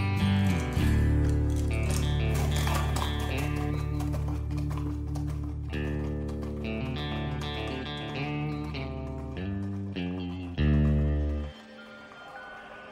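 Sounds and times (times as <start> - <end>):
horse hooves clip-clopping: 0.2 - 12.3
continuous sustained tonal background: 11.3 - 12.9.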